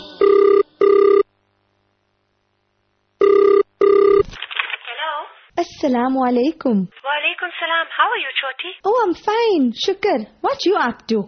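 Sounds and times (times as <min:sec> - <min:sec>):
telephone ringing with short electronic trills: 0:00.2 - 0:01.3, 0:03.2 - 0:04.3
speech: 0:05.8 - 0:11.2.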